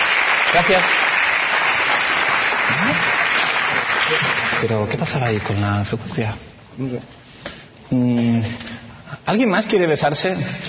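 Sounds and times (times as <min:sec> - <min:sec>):
audience applause after a talk on web standards: 0:00.0 - 0:05.6
speech: 0:00.5 - 0:01.2, 0:04.1 - 0:10.6.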